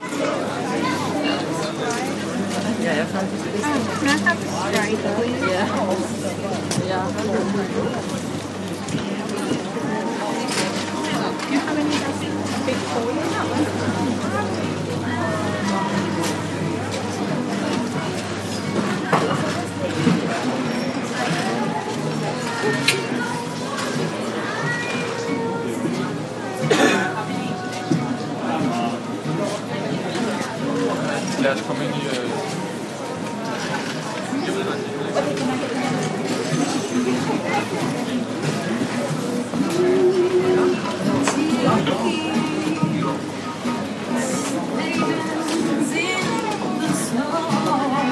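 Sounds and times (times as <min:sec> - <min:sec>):
Christmas market ambience: 0:00.0 - 0:48.0.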